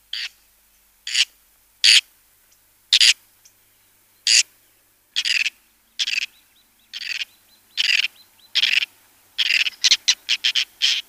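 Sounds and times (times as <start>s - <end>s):
whiskered tern uttering short hoarse rasping calls: 0.1s - 0.4s, 1.0s - 2.1s, 2.9s - 3.6s, 4.2s - 4.5s, 5.2s - 11.0s.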